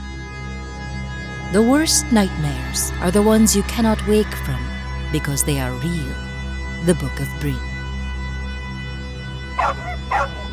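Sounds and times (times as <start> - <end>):
speech: 1.5 - 7.7
female wolf barking: 9.6 - 10.5.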